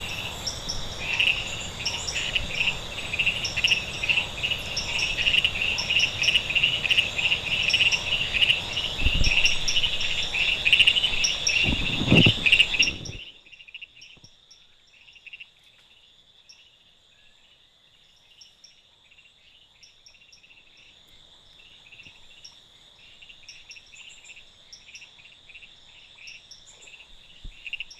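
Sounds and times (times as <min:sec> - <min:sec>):
Dendropsophus leucophyllatus calling: 0:00.0 - 0:13.5.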